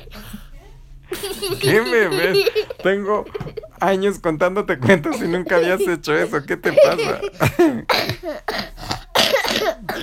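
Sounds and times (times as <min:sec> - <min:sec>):
laughter: 0:01.1 - 0:03.8, 0:04.8 - 0:07.9
speech: 0:01.2 - 0:08.7
child coughing after laughing: 0:07.0 - 0:10.0.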